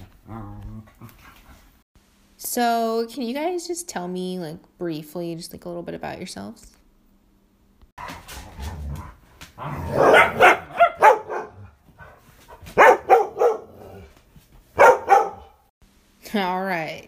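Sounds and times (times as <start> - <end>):
speech: 2.4 - 6.8, 16.4 - 17.0
dogs barking: 9.6 - 14.1, 14.7 - 15.7
dogs yipping: 9.9 - 11.7, 12.6 - 14.1, 14.8 - 15.6.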